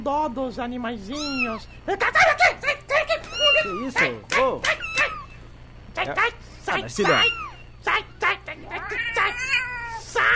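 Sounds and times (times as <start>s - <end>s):
speech: 0.0s - 5.1s, 6.0s - 9.5s
cat meowing: 1.1s - 1.7s, 3.2s - 4.1s, 4.7s - 5.3s, 7.0s - 7.6s, 8.7s - 10.3s
laughter: 1.9s - 5.4s.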